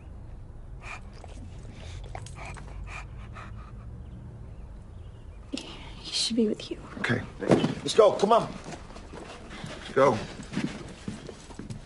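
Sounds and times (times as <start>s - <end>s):
low steady rumble: 0.0s - 7.5s
dog panting: 0.8s - 5.2s, 6.5s - 11.8s
speech: 6.3s - 8.6s, 10.0s - 10.4s.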